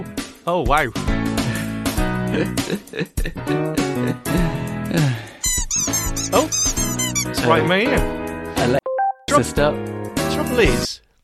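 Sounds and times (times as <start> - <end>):
speech: 0.4 - 1.2, 2.3 - 5.3, 7.4 - 8.8, 9.4 - 11.0
squeaky dog toy squeaking: 5.4 - 7.4.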